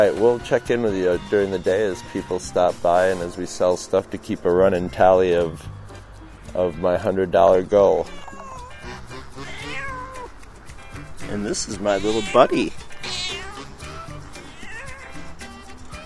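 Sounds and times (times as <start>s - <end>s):
speech: 0.0s - 5.8s, 6.5s - 8.2s, 11.3s - 12.8s
female cat meowing in a rough croaky voice: 8.0s - 8.8s, 9.4s - 10.3s, 11.8s - 15.3s.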